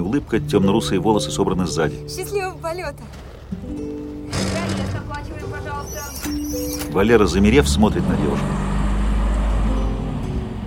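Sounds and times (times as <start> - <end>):
bus engine rumbling as the bus pulls away: 0.0 - 10.6
traffic noise: 0.0 - 10.6
speech: 0.1 - 8.7.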